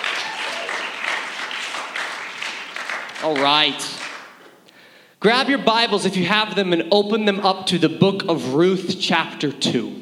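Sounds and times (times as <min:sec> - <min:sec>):
audience applause: 0:00.0 - 0:04.4
speech: 0:03.2 - 0:04.0, 0:05.2 - 0:09.9.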